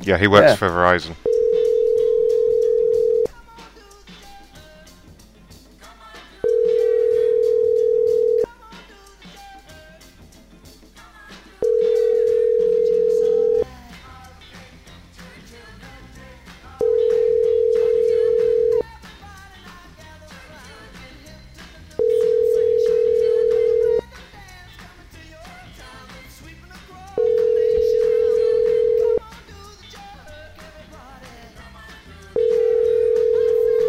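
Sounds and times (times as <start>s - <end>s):
speech: 0.0s - 1.4s
telephone ringback tone on a landline call: 1.2s - 3.3s, 6.4s - 8.5s, 11.6s - 13.6s, 16.8s - 18.8s, 22.0s - 24.0s, 27.2s - 29.2s, 32.4s - 33.8s.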